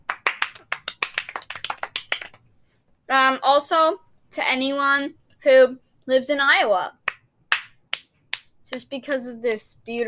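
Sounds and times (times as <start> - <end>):
hand clapping: 0.0 - 2.5, 7.0 - 10.0
speech: 3.1 - 7.0, 8.7 - 10.0.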